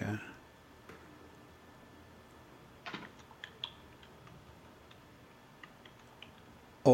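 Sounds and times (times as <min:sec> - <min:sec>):
steady low hiss: 0:00.0 - 0:06.9
clicks on a computer mouse or keys: 0:02.8 - 0:05.0, 0:05.6 - 0:06.5.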